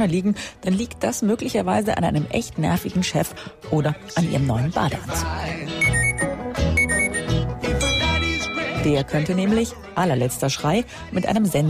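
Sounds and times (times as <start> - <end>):
speech: 0.0 - 5.9, 8.8 - 11.6
smartphone electronic ringtone melody: 5.8 - 9.0.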